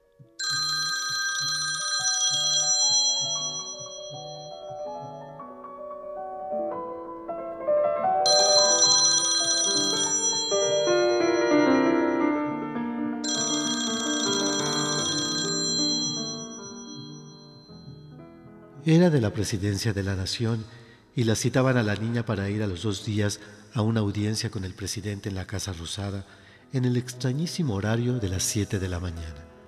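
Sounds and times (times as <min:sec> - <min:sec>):
telephone bell ringing in a house: 0:00.4 - 0:05.4, 0:08.3 - 0:18.1
piano melody: 0:02.6 - 0:19.9
speech: 0:18.9 - 0:29.5.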